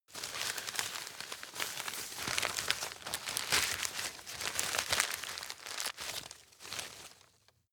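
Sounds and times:
rustling by a forester: 0.1s - 7.5s.

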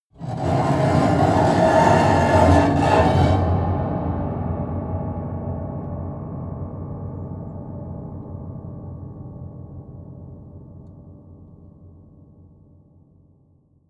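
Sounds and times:
low slow bowed broken piano string: 0.2s - 4.2s.

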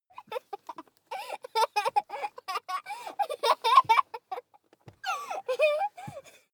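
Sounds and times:
child laughing while being tickled: 0.2s - 4.5s, 5.2s - 6.0s.

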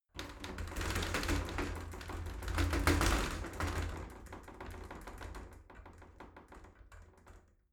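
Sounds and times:
shower sliding door rattling: 0.2s - 6.6s.

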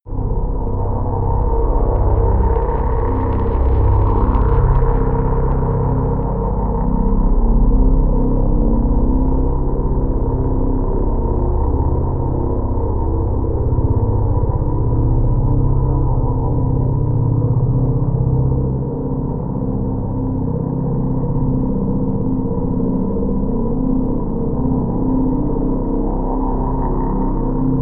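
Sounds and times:
drone: 0.1s - 27.8s.

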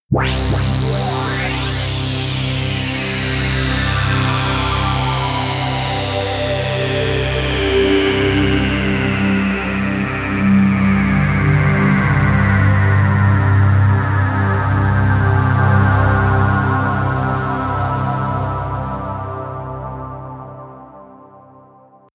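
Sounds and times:
synth pad sweep: 0.1s - 21.1s.

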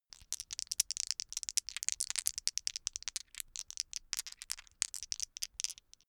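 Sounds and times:
dice shaken in open hands: 0.2s - 6.0s.

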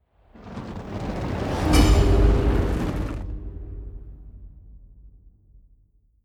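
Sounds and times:
magic fire bowl whoosh: 0.2s - 3.6s.

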